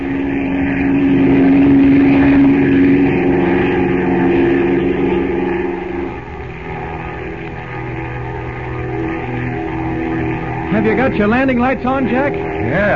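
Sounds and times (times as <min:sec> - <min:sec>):
propeller plane engine roaring on takeoff from a river: 0:00.0 - 0:12.9
speech: 0:10.9 - 0:12.9.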